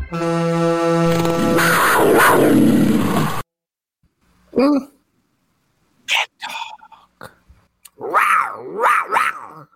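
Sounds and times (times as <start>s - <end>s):
short burst of dense loud noise: 0.2s - 3.5s
person imitating a cat growl: 4.5s - 5.0s, 6.1s - 9.7s
person imitating drawn-out cat meows: 7.9s - 9.7s.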